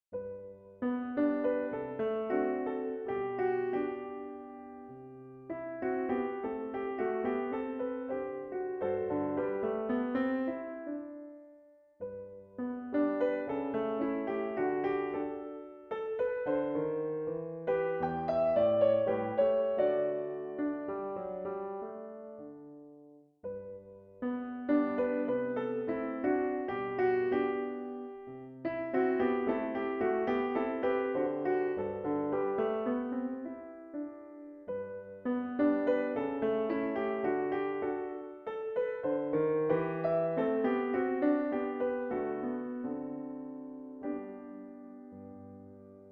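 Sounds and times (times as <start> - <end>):
canzonet on a Steinway piano: 0.0 - 46.1.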